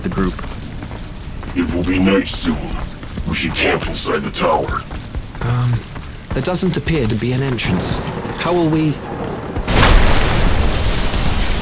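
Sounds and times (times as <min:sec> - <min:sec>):
speech: 0:00.0 - 0:00.6, 0:01.5 - 0:09.1
stone wall crumbling as brick and stone shards burst outward: 0:07.2 - 0:11.6
falling debris rumbling and crackling: 0:07.3 - 0:11.6.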